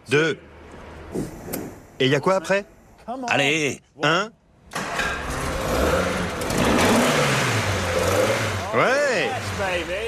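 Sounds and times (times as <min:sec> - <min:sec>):
speech: 0:00.1 - 0:00.5, 0:01.1 - 0:04.4
restored GT car engine starting and revving: 0:04.7 - 0:10.0.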